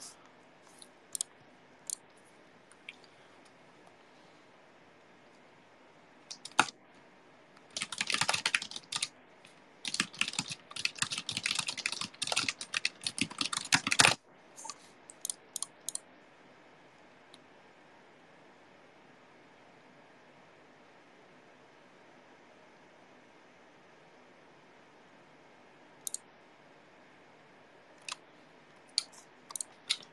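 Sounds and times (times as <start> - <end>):
fast typing on a computer keyboard: 6.3 - 6.7, 7.7 - 9.1, 9.8 - 14.2, 15.1 - 16.0, 29.0 - 30.1.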